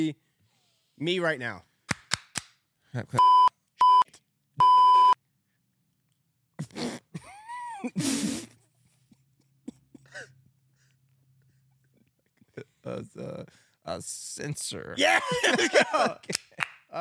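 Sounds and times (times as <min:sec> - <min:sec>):
speech: 0:00.0 - 0:00.3, 0:01.0 - 0:01.7, 0:02.9 - 0:03.4, 0:07.8 - 0:08.5, 0:12.8 - 0:16.9
short electronic voicemail beep tones: 0:03.2 - 0:04.0, 0:04.6 - 0:05.2
laughter: 0:15.0 - 0:16.7.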